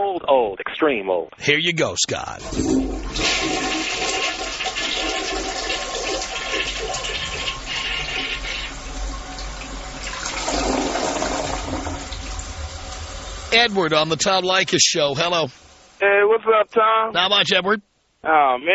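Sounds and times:
speech: 0.2s - 3.6s, 13.6s - 18.7s
toilet flush sound effect: 2.3s - 16.0s.

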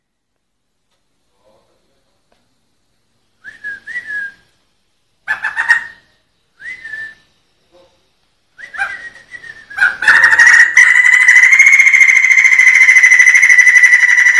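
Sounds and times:
Sumatran laughingthrush short whistled phrases in ngerol style: 3.4s - 4.5s, 5.7s - 7.3s, 8.5s - 14.3s
Sumatran laughingthrush harsh chattering bursts: 9.8s - 14.3s.

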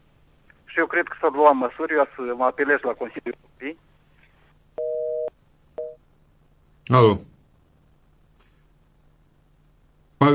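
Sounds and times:
faint hiss: 0.0s - 10.3s
speech: 0.8s - 3.9s, 6.9s - 7.3s
phone busy tone beeps after a call is cut off: 4.7s - 6.0s.

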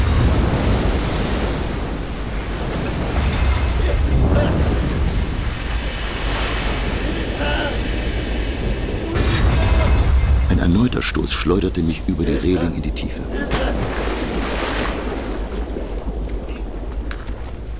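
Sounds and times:
huge water whirlpools crashing over a ship's deck: 0.0s - 10.9s, 13.4s - 16.3s
speech: 11.0s - 13.8s.

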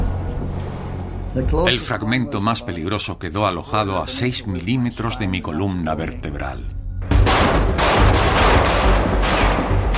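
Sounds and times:
speech: 1.3s - 6.8s
continuous volley of overlapping gunshots in a prison battle: 7.1s - 9.9s.

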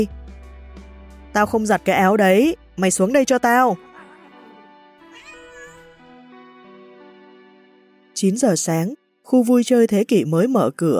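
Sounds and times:
speech: 1.3s - 3.9s, 8.2s - 10.9s
white cat meowing: 4.0s - 6.0s.

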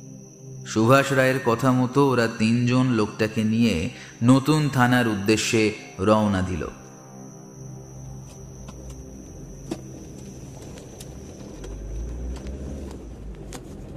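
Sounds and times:
speech: 0.7s - 6.8s
car engine and road rumble driving from a town road onto a village road: 7.8s - 13.9s.

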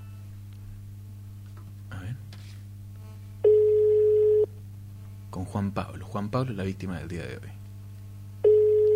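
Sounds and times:
ringback tone of an outgoing telephone call: 3.4s - 4.5s, 8.4s - 8.9s
speech: 5.5s - 7.6s.

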